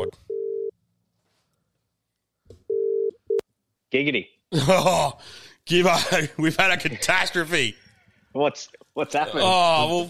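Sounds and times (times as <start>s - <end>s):
outgoing phone call ringing tone: 0.0s - 0.7s, 2.7s - 3.4s
speech: 3.9s - 7.8s, 8.4s - 10.0s.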